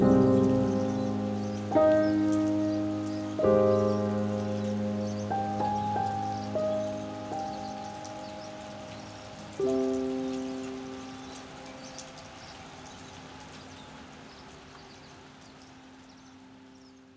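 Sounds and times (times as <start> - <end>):
piano outro: 0.0 - 12.0.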